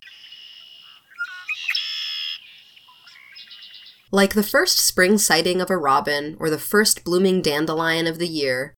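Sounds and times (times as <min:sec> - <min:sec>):
red-winged blackbird singing: 0:00.0 - 0:04.1
speech: 0:04.1 - 0:08.7.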